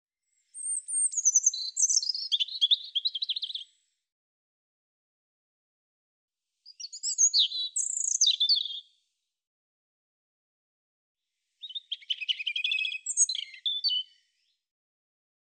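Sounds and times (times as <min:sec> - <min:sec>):
European robin song: 0:00.3 - 0:03.8, 0:06.6 - 0:09.0, 0:11.6 - 0:14.6.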